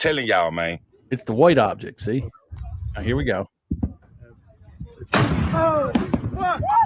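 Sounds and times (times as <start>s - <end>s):
speech: 0.0s - 3.5s, 5.0s - 6.8s
loud explosive blast over the ocean: 5.1s - 6.4s
excited voices calling out: 5.5s - 6.8s.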